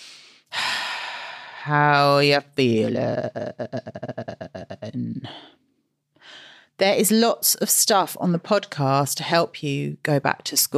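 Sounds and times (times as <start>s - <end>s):
deep breath in: 0.0s - 1.7s, 6.2s - 6.8s
speech: 1.6s - 5.6s, 6.2s - 10.7s.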